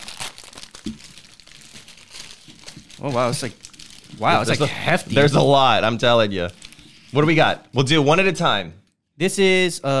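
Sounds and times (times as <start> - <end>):
plastic MRE ration package being ripped open by hand: 0.0 - 5.2, 6.5 - 7.4
speech: 3.0 - 3.6, 4.2 - 9.9.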